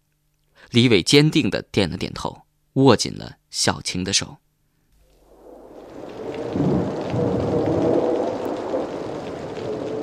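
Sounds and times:
speech: 0:00.7 - 0:04.5
heavy storm rain pouring: 0:05.1 - 0:10.0
deep rumbling roar of a storm: 0:05.2 - 0:10.0.

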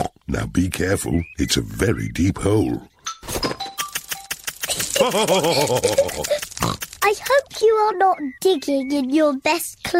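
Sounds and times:
speech: 0:00.3 - 0:03.5, 0:05.0 - 0:09.9
clatters: 0:03.2 - 0:07.6
laughter: 0:04.6 - 0:06.6
voice imitating a pig with grunting snorts: 0:06.2 - 0:07.0.

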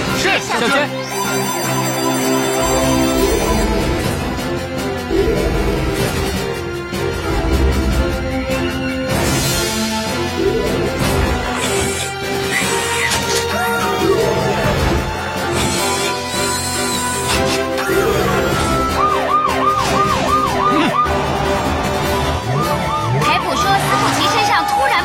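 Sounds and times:
busy loud music: 0:00.0 - 0:25.0
speech: 0:00.3 - 0:02.9, 0:05.2 - 0:05.7
fire alarm siren wailing: 0:01.0 - 0:03.9, 0:17.8 - 0:25.0.

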